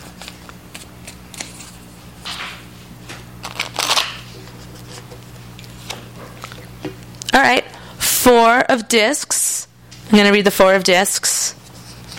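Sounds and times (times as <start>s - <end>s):
tarot cards being shuffled: 0.0s - 7.2s, 11.6s - 12.1s
low hum: 0.0s - 12.1s
speech: 6.8s - 11.6s.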